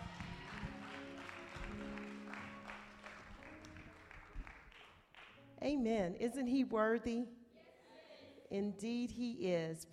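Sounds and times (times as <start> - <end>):
church audience applauding: 0.0 - 5.4
speech: 5.6 - 7.4, 8.5 - 9.9.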